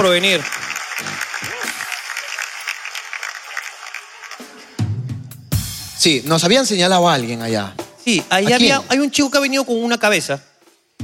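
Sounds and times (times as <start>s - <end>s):
speech: 0.0s - 1.2s, 6.0s - 10.5s
audience applause: 0.0s - 5.1s.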